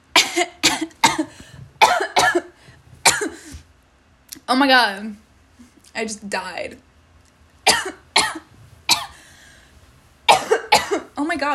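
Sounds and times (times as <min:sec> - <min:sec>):
person coughing harshly: 0:00.2 - 0:03.6, 0:07.7 - 0:09.2, 0:10.3 - 0:11.2
speech: 0:04.5 - 0:05.2, 0:06.0 - 0:06.8, 0:11.2 - 0:11.5.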